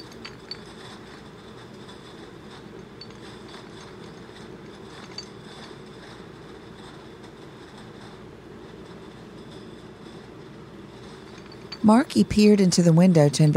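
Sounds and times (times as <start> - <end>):
glass dropper bottles knocking together: 0.0 - 1.0, 2.9 - 5.6, 11.1 - 12.2
conveyor belt rumbling behind a glass wall: 0.0 - 13.5
speech: 11.8 - 13.5.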